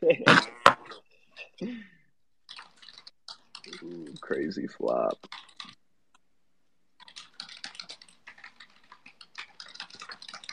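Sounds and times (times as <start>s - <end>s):
typing on a computer keyboard: 2.4s - 6.2s, 7.0s - 10.5s
speech: 4.5s - 5.4s.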